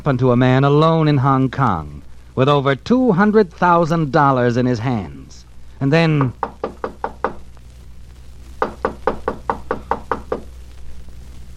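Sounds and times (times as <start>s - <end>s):
speech: 0.0s - 5.2s, 5.8s - 6.5s
sharp knocking on a door by an arriving visitor: 6.2s - 7.4s, 8.6s - 10.5s.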